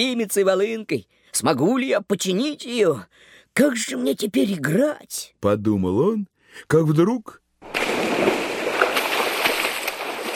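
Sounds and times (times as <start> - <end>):
speech: 0.0 - 7.8
heavy splash of a body falling into water: 7.6 - 10.3.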